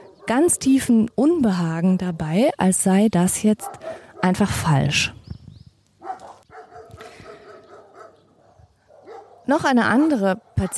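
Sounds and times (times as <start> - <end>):
dogs in a Bohemian village barking excitedly at a passer-by: 0.0 - 0.8, 3.5 - 4.5, 6.0 - 10.7
outdoor noise: 0.0 - 10.7
speech: 0.3 - 5.2, 9.5 - 10.7.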